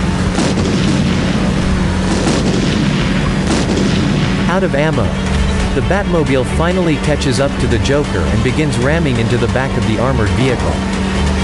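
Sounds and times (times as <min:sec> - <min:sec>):
crackling debris: 0:00.0 - 0:08.6
series of large colorful balls exploding during a vehicle chase: 0:00.0 - 0:11.4
speech: 0:04.6 - 0:11.0.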